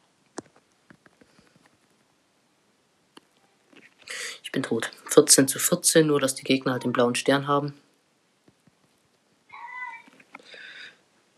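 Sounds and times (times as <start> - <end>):
speech: 4.6 - 7.9
cat meowing: 9.5 - 10.2.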